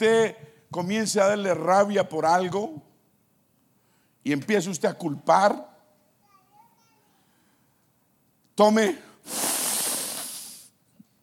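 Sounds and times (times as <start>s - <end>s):
speech: 0.0s - 2.9s, 4.2s - 5.7s, 8.6s - 9.4s
long deep breath drawn close to the microphone: 3.8s - 4.2s, 7.2s - 7.8s, 9.0s - 10.8s.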